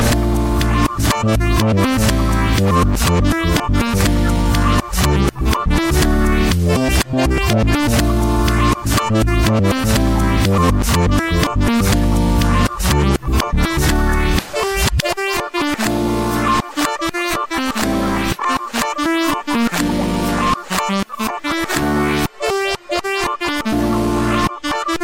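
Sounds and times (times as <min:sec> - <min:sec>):
funky piano: 0:00.1 - 0:25.0.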